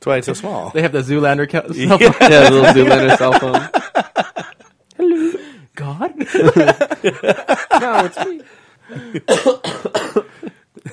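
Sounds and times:
speech: 0:00.0 - 0:03.8, 0:05.9 - 0:10.2
laughter: 0:01.7 - 0:04.7, 0:06.2 - 0:09.3
lingering cough in harsh raspy bursts: 0:08.9 - 0:10.9.

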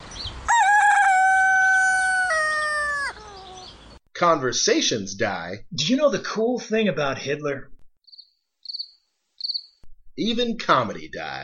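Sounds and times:
rooster crowing: 0:00.5 - 0:03.7
speech: 0:04.2 - 0:07.7, 0:10.2 - 0:11.4.

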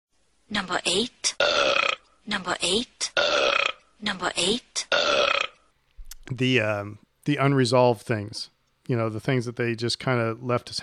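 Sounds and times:
speech: 0:00.5 - 0:05.5, 0:06.3 - 0:10.8
loud burps: 0:01.3 - 0:02.1, 0:03.1 - 0:04.0, 0:04.8 - 0:05.7.

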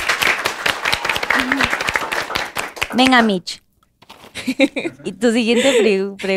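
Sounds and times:
many hands clapping in applause: 0:00.0 - 0:03.4
speech: 0:01.4 - 0:01.8, 0:02.9 - 0:03.6, 0:04.4 - 0:06.3.

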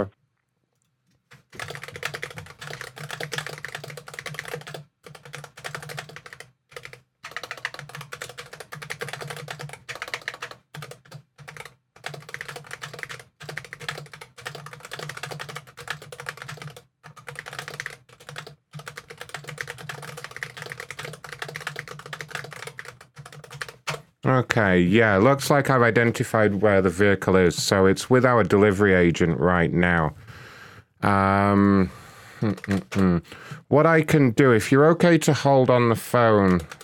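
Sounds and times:
typing notes on a computer keyboard: 0:01.3 - 0:24.1, 0:32.4 - 0:33.0, 0:36.5 - 0:36.8
speech: 0:24.3 - 0:30.2, 0:31.0 - 0:36.8.

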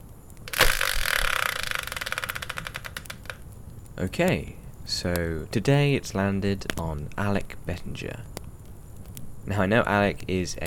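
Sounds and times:
prize wheel spinner ratcheting clicks: 0:00.5 - 0:03.4
speech: 0:04.0 - 0:08.4, 0:09.5 - 0:10.6.

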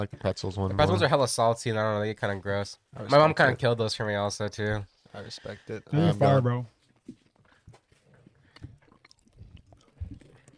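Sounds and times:
speech: 0:00.0 - 0:07.2
chewing crunchy peanut chocolate candies: 0:07.2 - 0:10.5.

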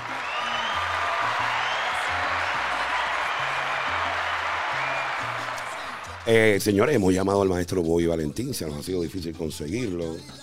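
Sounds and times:
crowd applause with many hands clapping: 0:00.0 - 0:06.7
speech: 0:06.3 - 0:10.4.

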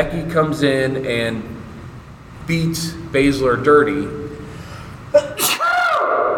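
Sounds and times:
speech: 0:00.0 - 0:01.6, 0:02.5 - 0:04.2
loud sneeze trailing into a screaming wail: 0:05.2 - 0:06.3.

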